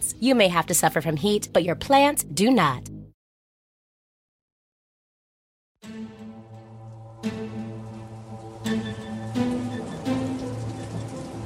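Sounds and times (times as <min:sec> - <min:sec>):
speech: 0:00.2 - 0:02.9
low sustained hum: 0:06.4 - 0:11.4
heavy rain falling: 0:06.6 - 0:11.4.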